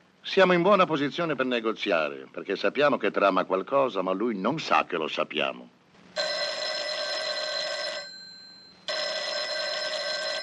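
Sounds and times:
speech: 0.3s - 5.8s
telephone bell ringing with a metallic trill: 6.2s - 10.4s.

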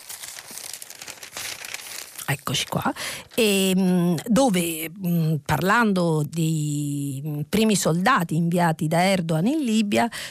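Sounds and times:
newspaper pages rustling and crinkling as they are turned: 0.0s - 3.7s
speech: 2.3s - 10.2s.

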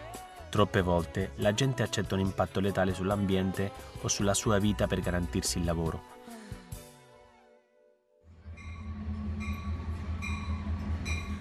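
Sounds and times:
speech: 0.6s - 6.1s
train heading toward Asailandia rumbling on rails: 8.3s - 11.4s
train wheels screeching: 8.4s - 11.4s.

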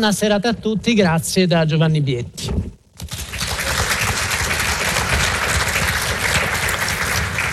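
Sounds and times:
speech: 0.0s - 2.6s
large audience applauding: 3.1s - 7.5s.

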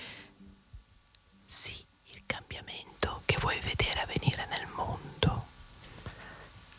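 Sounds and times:
breathy ASMR-style whispering in Italian: 1.5s - 5.5s.

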